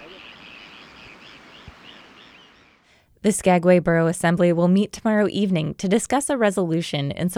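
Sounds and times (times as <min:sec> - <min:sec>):
gulls calling over a river: 0:00.0 - 0:02.8
constant low wash of ambient outdoor noise: 0:00.0 - 0:03.1
speech: 0:03.2 - 0:07.3.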